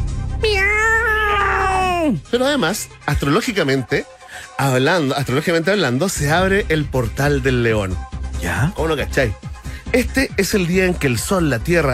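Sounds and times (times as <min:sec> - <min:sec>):
cat meowing: 0:00.4 - 0:02.2
speech: 0:02.3 - 0:11.9.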